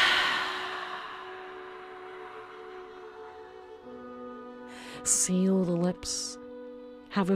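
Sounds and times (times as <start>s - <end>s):
long breathy exhale through the mouth: 0.0s - 2.2s
speech: 5.0s - 6.4s, 7.1s - 7.3s.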